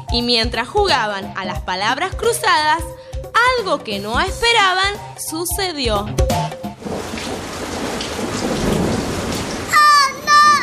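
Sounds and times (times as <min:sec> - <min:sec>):
speech: 0:00.1 - 0:06.5
heavy downpour: 0:06.8 - 0:10.6
low rumble of thunder: 0:06.8 - 0:10.6.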